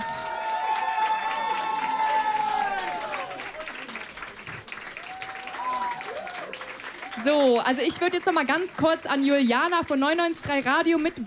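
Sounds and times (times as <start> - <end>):
people cheering: 0.0 - 9.0
audience applauding: 0.0 - 11.2
speech: 7.2 - 11.2.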